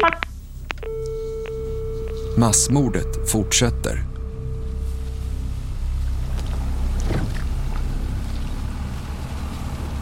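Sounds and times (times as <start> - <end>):
phone line clicking off as caller hangs up: 0.0 - 5.4
steady electronic busy tone after call is cut off: 0.0 - 9.0
leisure motorboat engine droning arriving at Utøya island in Norway: 0.3 - 10.0
speech: 2.4 - 4.1.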